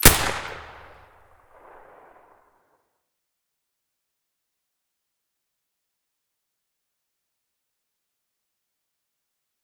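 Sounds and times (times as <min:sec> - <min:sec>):
suppressed SV98 rifle shot: 0:00.0 - 0:02.2.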